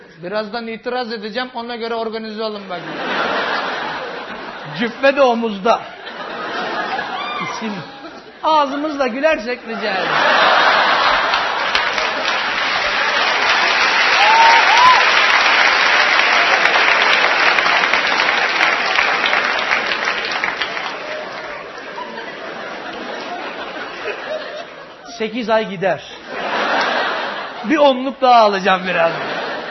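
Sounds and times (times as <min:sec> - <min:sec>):
speech: 0:00.2 - 0:03.3, 0:04.7 - 0:05.9, 0:07.6 - 0:10.5, 0:25.2 - 0:26.2, 0:27.6 - 0:29.3
laughter: 0:02.7 - 0:29.6
audience applause at a stage show: 0:06.3 - 0:07.6, 0:10.0 - 0:24.9.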